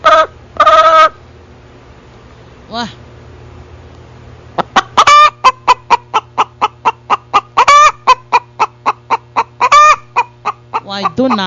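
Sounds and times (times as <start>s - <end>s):
hen clucking and cackling: 0.0s - 1.2s, 4.4s - 11.4s
low constant hum: 0.0s - 11.4s
speech: 2.7s - 3.0s, 11.0s - 11.4s.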